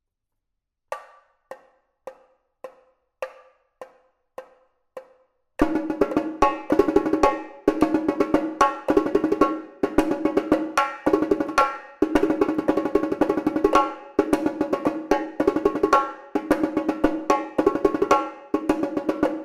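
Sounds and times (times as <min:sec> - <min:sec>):
repinique drum playing a marcha rhythm: 0:05.6 - 0:19.4.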